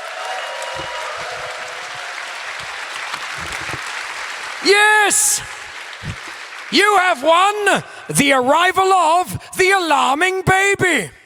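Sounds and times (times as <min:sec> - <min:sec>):
applause from a group: 0:00.0 - 0:08.4
speech: 0:04.6 - 0:05.6, 0:06.7 - 0:11.2.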